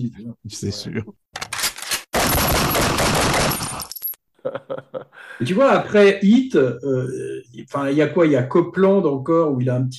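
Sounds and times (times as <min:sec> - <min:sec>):
speech: 0:00.0 - 0:01.2, 0:04.4 - 0:09.9
automatic gunfire sound effect: 0:02.1 - 0:03.9
laughter: 0:04.4 - 0:05.9.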